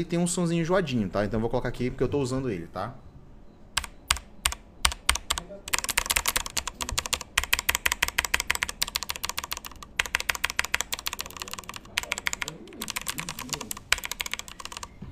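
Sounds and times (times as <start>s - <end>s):
speech: 0.0s - 3.0s
typing on Corsair K95 Platinum linear mechanical gaming keyboard with Cherry Speed switches: 3.8s - 15.0s.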